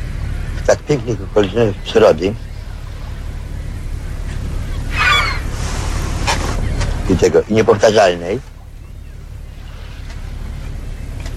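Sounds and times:
outdoor rustling noise: 0:00.0 - 0:11.3
speech: 0:00.7 - 0:02.5, 0:07.2 - 0:08.5
farmyard poultry honking call: 0:01.4 - 0:07.1.

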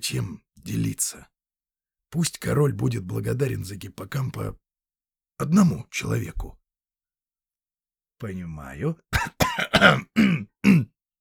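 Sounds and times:
speech: 0:00.0 - 0:01.4, 0:02.1 - 0:04.6, 0:05.4 - 0:06.6, 0:08.2 - 0:10.9
man clearing his throat: 0:09.2 - 0:10.9.

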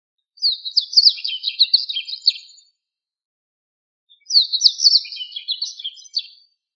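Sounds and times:
bird twittering: 0:00.4 - 0:02.6, 0:04.1 - 0:06.4.

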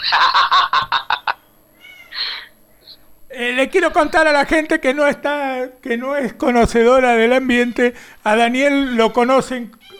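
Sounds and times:
laughter: 0:00.0 - 0:01.5
speech: 0:00.1 - 0:00.9, 0:03.6 - 0:09.9
cat meowing: 0:01.8 - 0:02.5, 0:09.8 - 0:09.9.

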